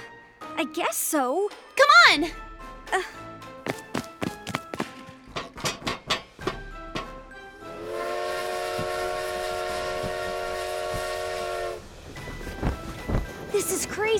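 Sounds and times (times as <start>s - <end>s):
speech: 0.6s - 3.3s
train clattering on rails: 4.6s - 7.4s, 11.8s - 14.1s
train whistle blowing: 7.7s - 11.9s.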